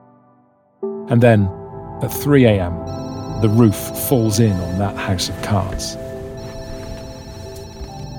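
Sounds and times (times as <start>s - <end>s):
speech: 1.1s - 6.0s
telephone ringing with electronic trill: 2.9s - 8.1s.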